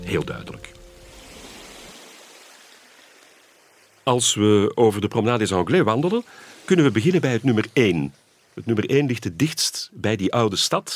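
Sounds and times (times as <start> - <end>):
sea waves breaking on pebble beach: 0.0 - 4.3, 5.4 - 9.1
speech: 0.1 - 0.7, 4.0 - 10.9.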